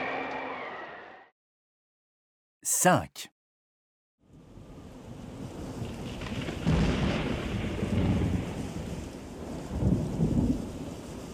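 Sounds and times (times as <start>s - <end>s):
speech: 2.6s - 3.3s
steady downpour of rain: 4.5s - 11.3s
rumbling thunder: 5.7s - 11.2s.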